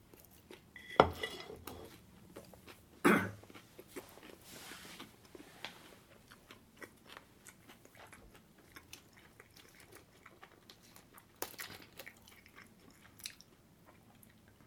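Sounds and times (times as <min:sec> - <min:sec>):
faint chewing of karaage: 0:00.0 - 0:00.8, 0:01.6 - 0:14.6
dishes or utensils clinking: 0:00.8 - 0:01.9.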